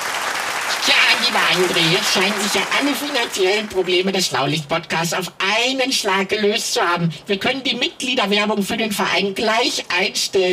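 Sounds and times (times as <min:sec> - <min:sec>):
dense crowd applause: 0:00.0 - 0:04.2
speech: 0:00.8 - 0:10.5.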